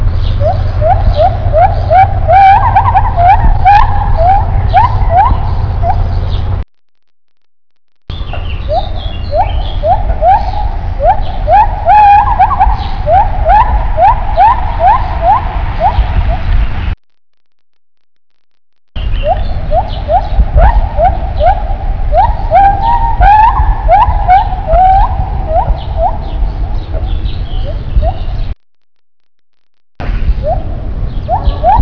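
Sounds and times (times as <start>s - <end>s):
male agile gibbon calling: 0.3s - 6.4s, 8.1s - 16.5s, 19.0s - 28.4s, 30.4s - 31.7s.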